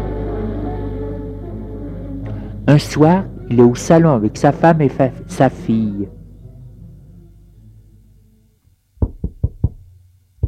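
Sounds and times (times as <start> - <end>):
low hum: 0.0 - 10.4
speech: 2.7 - 6.2
sharp knocking on a door: 9.0 - 10.4.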